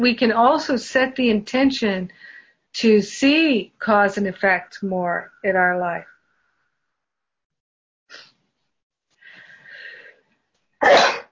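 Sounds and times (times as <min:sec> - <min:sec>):
speech: 0:00.0 - 0:06.1
sneeze: 0:10.8 - 0:11.3.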